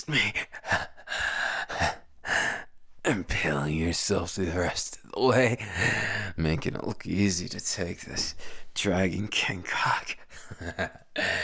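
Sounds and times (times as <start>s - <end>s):
speech: 0.0s - 0.5s, 3.1s - 11.4s
person gasping: 0.4s - 2.7s, 5.6s - 6.4s, 11.2s - 11.4s.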